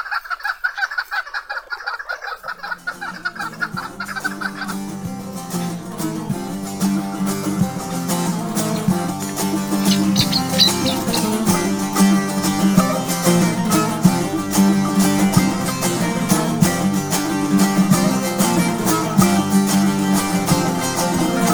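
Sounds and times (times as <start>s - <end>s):
chukar partridge clucking calls: 0.0s - 21.5s
instrumental music: 2.7s - 21.5s.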